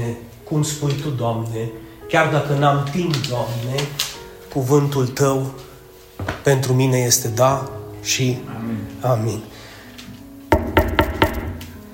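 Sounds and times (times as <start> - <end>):
speech: 0.1 - 9.6
sharp knocks on a door: 10.5 - 11.7.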